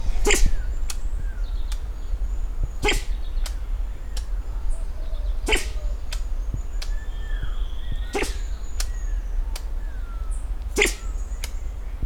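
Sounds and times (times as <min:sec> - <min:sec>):
low rumble: 0:00.0 - 0:03.3
faint whistled bird notes: 0:00.0 - 0:12.0
diademed sifaka giving sharp sneeze-like bursts at Tsinjoarivo: 0:00.1 - 0:00.6, 0:02.8 - 0:03.2, 0:05.4 - 0:05.9, 0:08.1 - 0:08.5, 0:10.8 - 0:11.2.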